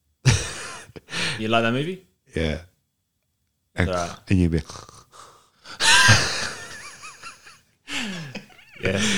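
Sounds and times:
person imitating heavy open-mouthed breathing: 1.1s - 1.4s, 5.0s - 6.0s, 7.9s - 9.1s
speech: 1.4s - 2.7s, 3.8s - 6.2s, 8.8s - 9.1s.

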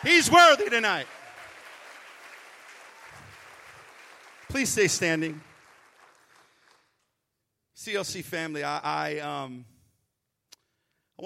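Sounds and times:
speech: 0.0s - 1.2s, 4.5s - 5.5s, 7.8s - 9.7s
church audience applauding: 0.0s - 7.1s.

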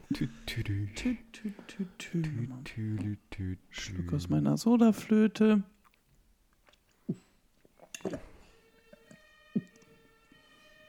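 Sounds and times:
speech: 0.1s - 5.8s, 8.0s - 8.3s
emergency vehicle siren sound effect: 8.4s - 10.8s.

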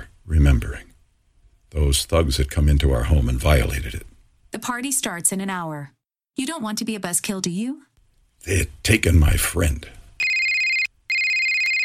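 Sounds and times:
speech: 0.3s - 0.9s, 1.7s - 10.0s
electronic phone ringtone from an incoming spam call: 10.2s - 11.8s.

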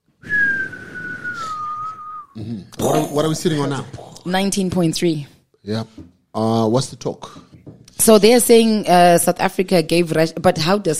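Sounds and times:
person whistling one long steady note: 0.2s - 2.4s
speech: 2.4s - 10.9s.

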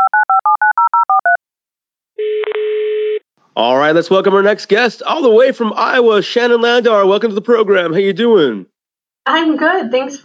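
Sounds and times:
steady telephone line tone: 0.0s - 1.4s, 2.2s - 3.2s
speech: 3.6s - 8.7s, 9.3s - 10.2s.

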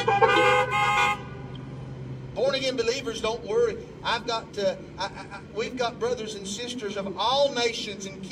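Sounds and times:
overlapping car horns honking: 0.0s - 1.6s
speech: 2.7s - 8.2s.

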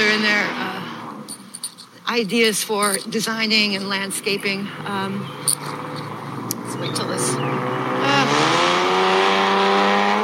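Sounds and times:
motorbike engines roaring past on a nearby road: 0.0s - 1.4s, 4.2s - 10.2s
speech: 2.1s - 5.9s, 6.7s - 8.4s.

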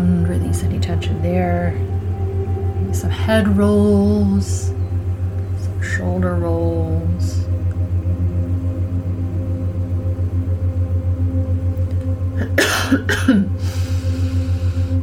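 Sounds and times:
steady low hum: 0.0s - 15.0s
speech: 1.0s - 1.9s, 2.8s - 4.8s, 5.8s - 7.5s
person coughing: 12.4s - 13.6s.

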